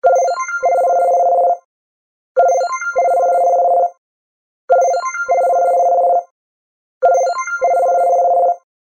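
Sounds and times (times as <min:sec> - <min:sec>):
soft LG phone ringtone: 0:00.0 - 0:01.7, 0:02.4 - 0:04.0, 0:04.7 - 0:06.3, 0:07.0 - 0:08.6.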